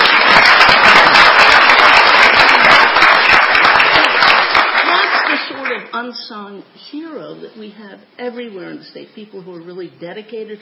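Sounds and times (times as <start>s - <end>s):
crowd applauding: 0.0s - 5.9s
speech: 6.1s - 10.5s.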